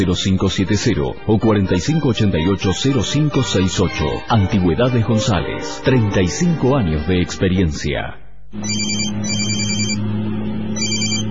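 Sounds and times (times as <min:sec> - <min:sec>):
speech: 0:00.0 - 0:09.6
cell phone ringtone chirping: 0:08.6 - 0:10.0, 0:10.8 - 0:11.3
low hum of a car engine on the road: 0:08.6 - 0:11.3.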